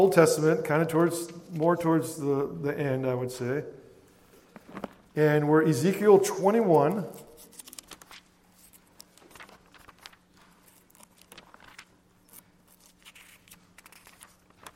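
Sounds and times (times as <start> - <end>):
speech: 0.0 - 3.8, 4.7 - 7.2
low steady hum: 0.0 - 14.7
many Bible pages turning: 4.5 - 5.1, 6.8 - 14.7.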